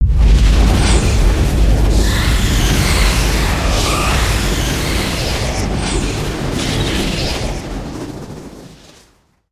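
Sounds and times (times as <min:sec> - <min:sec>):
scratch swirl: 0:00.8 - 0:09.0.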